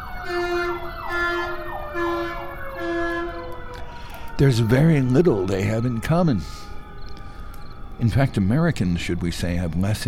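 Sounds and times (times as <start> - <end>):
emergency vehicle siren wailing: 0.0 - 10.0
street noise: 0.0 - 10.0
speech: 0.3 - 1.4, 4.4 - 6.7, 8.0 - 10.0.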